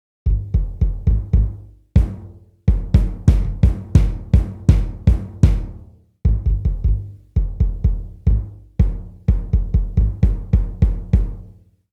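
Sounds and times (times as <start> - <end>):
22 inch acoustic kick drum boom: 0.3 - 11.4.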